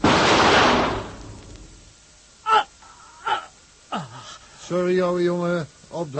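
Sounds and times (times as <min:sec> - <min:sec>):
revolver shot fired in a craft's cabin: 0:00.0 - 0:01.4
speech: 0:04.7 - 0:06.1.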